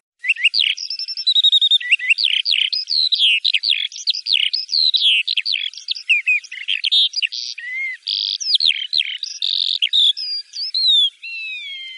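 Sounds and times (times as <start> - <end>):
Eurasian skylark singing: 0.2 - 11.9.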